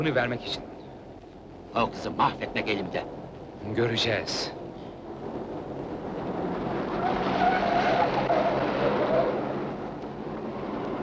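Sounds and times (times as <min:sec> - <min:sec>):
speech: 0:00.0 - 0:00.8, 0:01.7 - 0:04.6
road noise: 0:00.0 - 0:11.0
car engine roaring at high speed: 0:04.7 - 0:11.0
tires squealing: 0:05.8 - 0:11.0.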